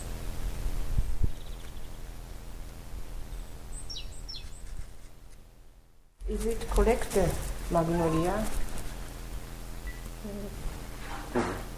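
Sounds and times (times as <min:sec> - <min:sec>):
steady outdoor hum: 0:00.0 - 0:11.7
unusual bird calling in a garden in Quickborn Germany: 0:01.3 - 0:02.0, 0:03.2 - 0:04.8
speech: 0:06.3 - 0:08.6, 0:10.2 - 0:10.7.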